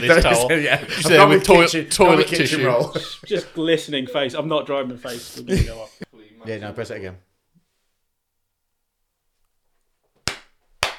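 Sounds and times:
laughter: 0:00.0 - 0:04.0, 0:05.0 - 0:06.1
speech: 0:00.0 - 0:07.3
soft hand claps: 0:10.2 - 0:10.9.

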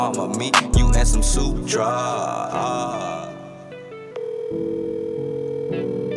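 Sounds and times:
speech: 0:00.1 - 0:03.3
phone ringing with a melodic electronic ringtone: 0:02.9 - 0:06.1.

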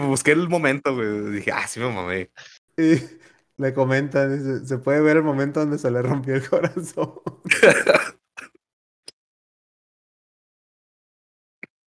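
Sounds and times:
speech: 0:00.0 - 0:08.1
laughter: 0:06.0 - 0:08.2
rough cough or throat clearing: 0:07.6 - 0:08.6.

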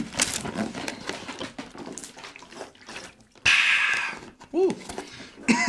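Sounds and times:
person swigging water with sloshing and swallowing: 0:00.1 - 0:05.5
breathy watery rush: 0:02.0 - 0:05.4.

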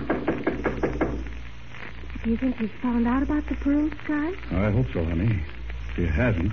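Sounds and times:
knocking on a door: 0:00.0 - 0:01.3
faint low hum: 0:00.0 - 0:06.5
speech: 0:02.3 - 0:06.5.

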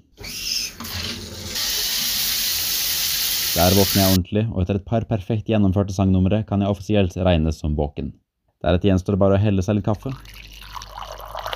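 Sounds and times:
shower running with spraying water: 0:00.8 - 0:04.2
speech: 0:03.6 - 0:10.4.

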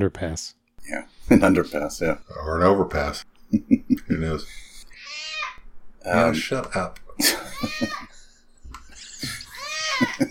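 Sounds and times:
speech: 0:00.0 - 0:04.7, 0:06.0 - 0:08.1
laughter: 0:03.5 - 0:05.0, 0:07.1 - 0:10.3
cat meowing: 0:05.0 - 0:05.6.

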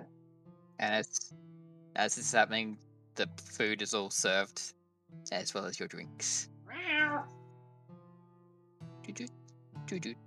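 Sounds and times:
speech: 0:00.8 - 0:06.5, 0:09.1 - 0:09.3, 0:09.9 - 0:10.2
cat meowing: 0:06.7 - 0:07.3.

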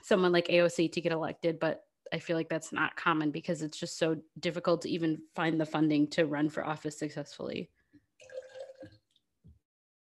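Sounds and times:
speech: 0:00.1 - 0:09.0
liquid pouring into a metal can: 0:08.2 - 0:09.2.

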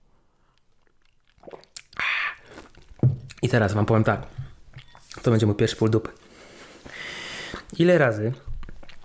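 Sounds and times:
hissy gulp: 0:01.4 - 0:02.8
slurping sip of whisky and cola: 0:01.4 - 0:02.9
speech: 0:03.4 - 0:04.4, 0:05.2 - 0:06.2, 0:07.8 - 0:08.5.

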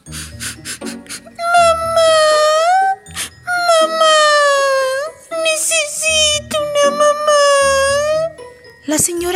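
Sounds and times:
loud wavering crying wails: 0:01.2 - 0:08.3.

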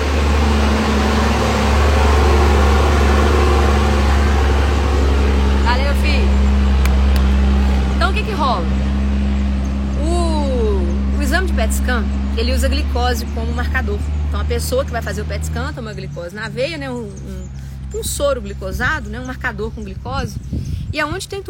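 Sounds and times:
rising and falling whines: 0:00.0 - 0:12.6
loud noisy truck driving past: 0:00.0 - 0:21.4
speech: 0:13.1 - 0:21.4.

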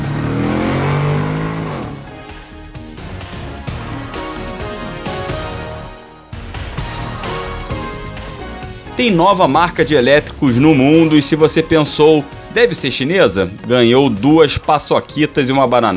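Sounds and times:
car engine revving and accelerating: 0:00.0 - 0:05.2
speech: 0:09.0 - 0:15.9.

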